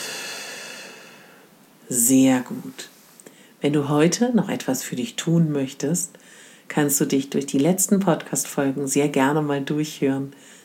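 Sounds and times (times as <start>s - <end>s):
exhaling through the mouth: 0.0s - 1.5s
speech: 1.9s - 3.0s, 3.6s - 10.6s.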